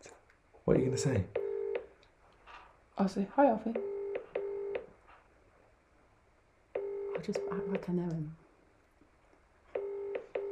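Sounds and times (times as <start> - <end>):
speech: 0.7 - 1.4, 3.0 - 3.9, 7.2 - 8.4
phone keypad tone from dialing a number: 1.4 - 1.8, 3.8 - 4.9, 6.8 - 7.9, 9.8 - 10.5.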